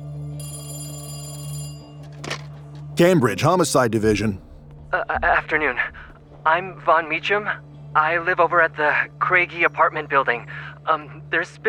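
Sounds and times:
telephone bell ringing at a homicide division desk: 0:00.4 - 0:02.2
speech: 0:03.0 - 0:11.6.

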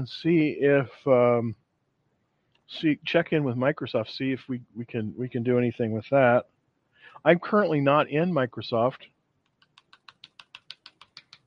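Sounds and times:
speech: 0:00.0 - 0:01.6, 0:02.7 - 0:06.5, 0:07.1 - 0:09.1
typing on a computer keyboard: 0:09.5 - 0:11.4.

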